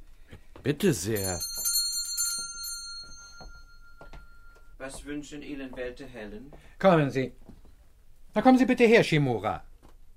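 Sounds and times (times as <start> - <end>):
speech: 0.6 - 1.6, 4.8 - 7.5, 8.4 - 9.7
bell rung by pulling a bell pull: 1.0 - 5.0.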